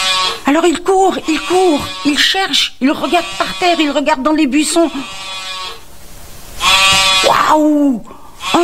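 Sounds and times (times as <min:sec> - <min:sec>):
sheep bleating: 0:00.0 - 0:04.0, 0:04.8 - 0:05.8, 0:06.6 - 0:07.4
speech: 0:00.5 - 0:05.4, 0:07.5 - 0:08.6.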